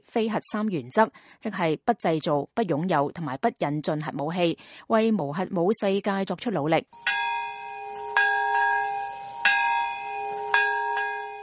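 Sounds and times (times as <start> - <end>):
speech: 0.1 - 7.4
large memorial bell tolling: 7.0 - 11.4.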